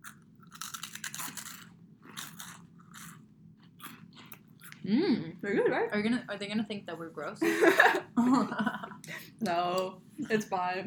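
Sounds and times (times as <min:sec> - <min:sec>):
crunchy snack being bitten and chewed: 0:00.0 - 0:04.8
speech: 0:04.8 - 0:10.8.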